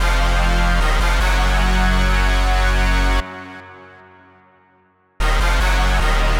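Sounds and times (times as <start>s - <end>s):
brass loop at 150 BPM in F minor: 0.0s - 3.6s, 5.2s - 6.3s.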